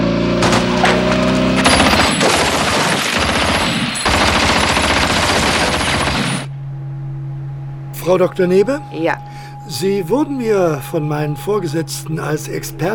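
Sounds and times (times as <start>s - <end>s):
low hum: 0.0s - 12.9s
gunfire from several guns shooting at a motorcycle: 0.4s - 6.5s
speech: 8.0s - 12.9s.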